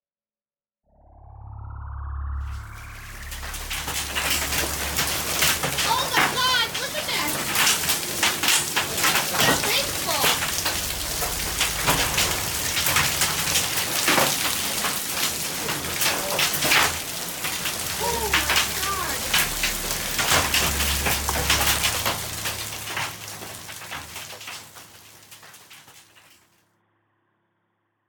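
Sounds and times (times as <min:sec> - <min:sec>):
low rumble: 0:00.9 - 0:09.0, 0:09.8 - 0:15.0, 0:17.0 - 0:24.0
hail pelting hard surfaces during a thunderstorm: 0:03.1 - 0:26.4
faint voices: 0:05.6 - 0:12.8, 0:17.7 - 0:20.4.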